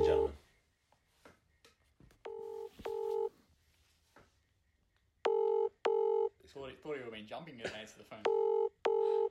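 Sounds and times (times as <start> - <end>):
electronic ringback tones of an outgoing phone call: 2.3 - 3.3, 5.3 - 6.3, 8.3 - 9.2.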